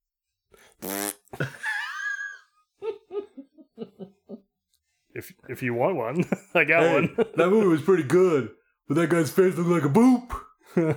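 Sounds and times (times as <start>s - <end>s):
speech: 0.7s - 1.0s, 5.2s - 10.9s
buzzy fart: 0.8s - 1.4s
laughter: 1.4s - 4.4s, 6.0s - 8.4s, 10.7s - 10.9s.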